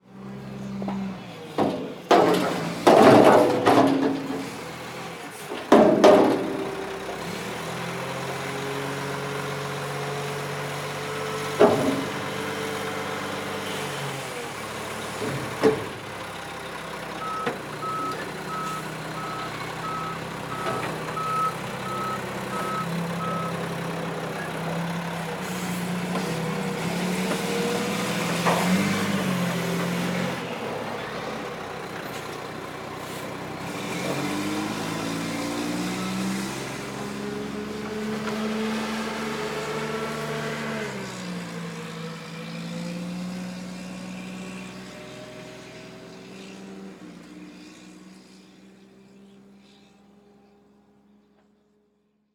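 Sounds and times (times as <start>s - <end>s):
large garbage truck: 0.0s - 48.8s.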